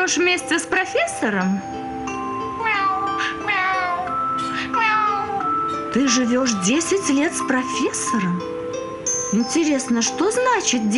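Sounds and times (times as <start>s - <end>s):
speech: 0.0s - 1.8s, 6.0s - 8.5s, 9.3s - 10.9s
cat meowing: 2.6s - 5.7s.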